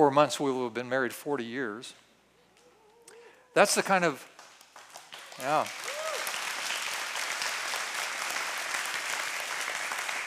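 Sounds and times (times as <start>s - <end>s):
speech: 0.0s - 2.0s, 3.6s - 4.4s, 5.4s - 5.9s
room full of people clapping steadily: 4.3s - 10.2s.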